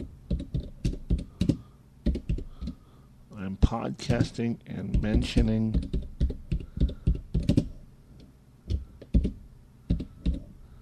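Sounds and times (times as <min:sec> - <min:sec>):
typing on a computer keyboard: 0:00.0 - 0:02.8, 0:04.1 - 0:07.7, 0:08.7 - 0:10.5
speech: 0:03.5 - 0:06.0.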